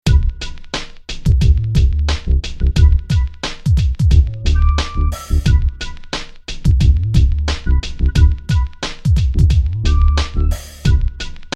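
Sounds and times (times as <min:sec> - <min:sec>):
hip hop beat on a groovebox: 0:00.0 - 0:11.5.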